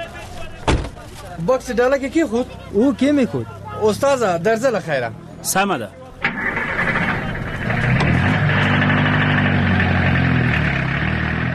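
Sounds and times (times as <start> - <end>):
speech: 1.4 - 6.0
taxi car engine running: 6.2 - 11.5.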